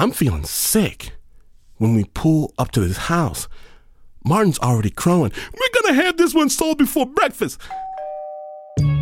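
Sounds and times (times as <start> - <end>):
speech: 0.0 - 1.2, 1.8 - 7.9
doorbell chiming with a loud ringing tone: 7.7 - 8.9.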